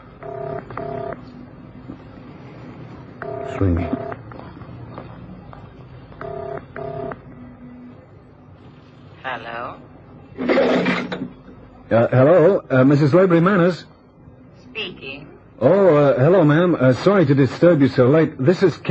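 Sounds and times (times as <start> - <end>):
low hum: 0.0 - 18.8
touch-tone beeps of a phone number being dialed: 3.2 - 4.2
speech: 3.6 - 4.1, 11.9 - 13.9, 15.6 - 18.8.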